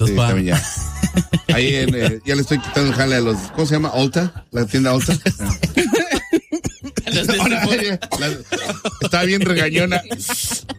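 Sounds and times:
speech: 0:00.0 - 0:00.9, 0:01.6 - 0:06.2, 0:07.1 - 0:10.7
laughter: 0:00.4 - 0:04.3, 0:04.9 - 0:10.7
person coughing roughly: 0:05.6 - 0:09.0.

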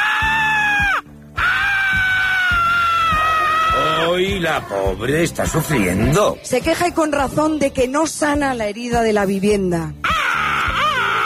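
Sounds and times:
bird screeching loudly: 0:00.0 - 0:03.8, 0:10.0 - 0:11.2
speech: 0:04.5 - 0:10.0.

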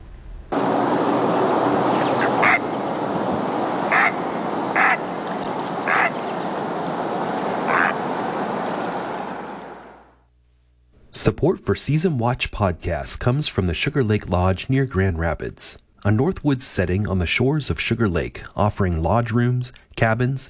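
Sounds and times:
steady rushing wash of water or wind: 0:00.5 - 0:10.1
great blue heron giving harsh croaking squawks: 0:00.6 - 0:09.4
speech: 0:11.3 - 0:20.4.

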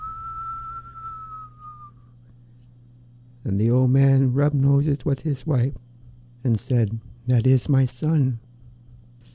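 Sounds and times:
voice whistling in imitation of the north wind: 0:00.0 - 0:02.1
low hum: 0:00.0 - 0:09.3
speech: 0:03.4 - 0:08.4.

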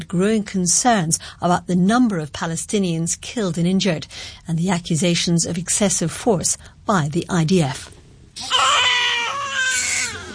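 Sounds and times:
speech: 0:00.0 - 0:08.9
newborn baby crying in a Nablus hospital: 0:08.4 - 0:10.3.

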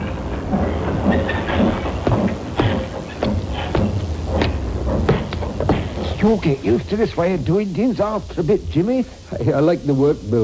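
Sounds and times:
sharp metallic knocks: 0:00.0 - 0:06.6
train cars clattering through a railroad yard in the coal district: 0:00.0 - 0:08.2
speech: 0:06.2 - 0:10.4.

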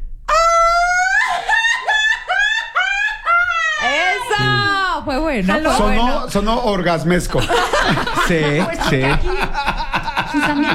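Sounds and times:
laughter: 0:01.2 - 0:04.9, 0:05.5 - 0:10.7
person letting out a traditional Mexican grito, festive yell: 0:03.6 - 0:04.9
speech: 0:05.1 - 0:09.4, 0:10.3 - 0:10.7.

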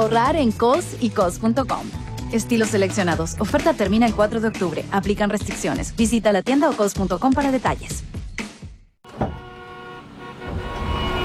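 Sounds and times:
speech: 0:00.0 - 0:08.2
car horns honking in congested morning traffic: 0:09.1 - 0:11.2.

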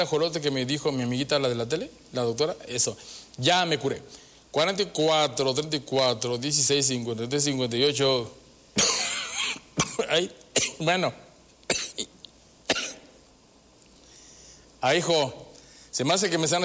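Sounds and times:
speech: 0:00.0 - 0:08.9, 0:10.0 - 0:11.3, 0:14.8 - 0:15.4, 0:16.0 - 0:16.6
harsh hacking coughing fit with gasps: 0:08.8 - 0:11.0, 0:11.7 - 0:13.2.

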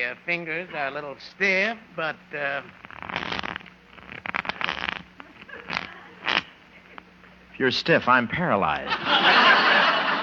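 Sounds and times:
speech: 0:00.0 - 0:03.2, 0:07.6 - 0:09.5
deck of playing cards shuffled for a card game: 0:02.6 - 0:07.0
laughter: 0:05.2 - 0:06.2, 0:08.8 - 0:10.2.

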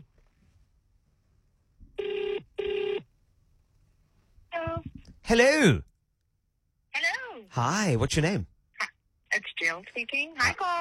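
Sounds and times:
outgoing telephone call ringback tone: 0:02.0 - 0:03.0
speech: 0:05.3 - 0:05.9, 0:07.6 - 0:08.9, 0:09.8 - 0:10.7.

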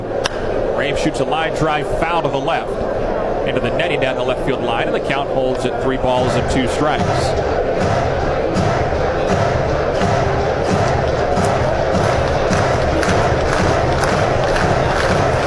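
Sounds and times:
cheering: 0:00.0 - 0:15.4
large baseball stadium crowd roaring: 0:00.0 - 0:15.4
speech: 0:00.8 - 0:08.1
faint rhythmic thumps: 0:06.2 - 0:15.4.

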